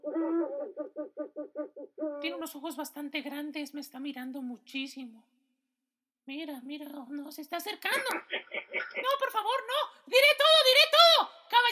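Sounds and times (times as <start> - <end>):
owl hooting: 0.0 - 2.3
speech: 0.9 - 5.4, 6.3 - 11.7.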